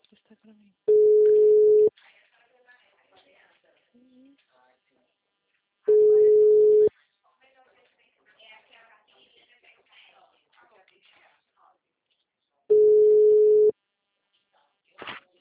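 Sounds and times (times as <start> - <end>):
telephone busy tone after a dropped call: 0.9 - 1.9, 5.9 - 6.9, 12.7 - 13.7.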